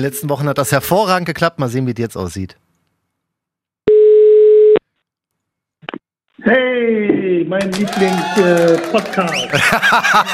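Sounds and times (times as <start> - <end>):
speech: 0.0 - 2.6, 6.4 - 10.3
electronic ringback tone of an outgoing phone call: 3.9 - 4.8
laughter: 7.8 - 10.3.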